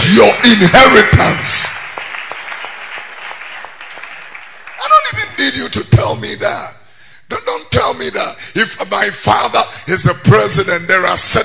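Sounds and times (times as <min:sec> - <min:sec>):
audience clapping hands: 0:00.0 - 0:05.8
speech: 0:00.2 - 0:01.8, 0:07.8 - 0:11.4.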